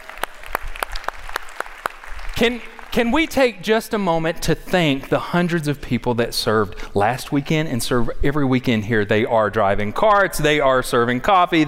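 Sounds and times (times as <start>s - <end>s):
hands clapping at a weekend service gathering: 0.0s - 3.6s
speech: 2.4s - 11.6s.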